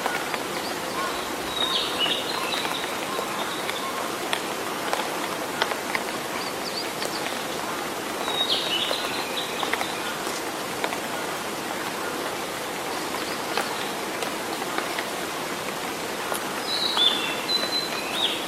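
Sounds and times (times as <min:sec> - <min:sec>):
bright bird calls: 0:00.0 - 0:05.0, 0:05.6 - 0:10.3, 0:16.3 - 0:18.4
rain pattering in a forest in early summer: 0:00.0 - 0:18.4.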